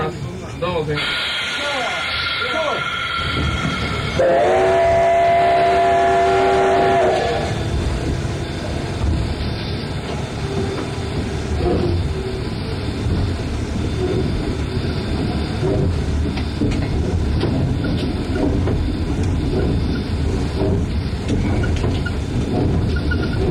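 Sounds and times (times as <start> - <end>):
steam locomotive rumbling and hiss: 0.0 - 23.5
steam locomotive chuffing heavily: 0.2 - 23.5
steam locomotive whistle blast: 1.0 - 7.6.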